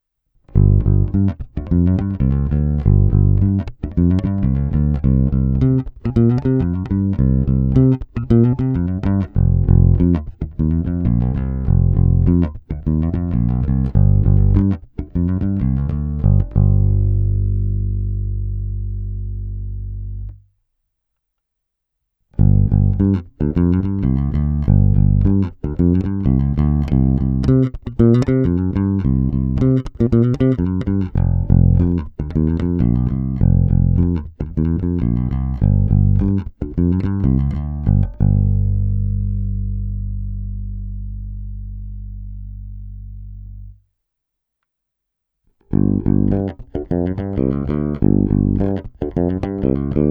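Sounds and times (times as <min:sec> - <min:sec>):
jazz bass on a Sadowsky NYC Ultra Vintage J Bass guitar: 0:00.5 - 0:20.5, 0:22.3 - 0:43.8, 0:45.7 - 0:50.1.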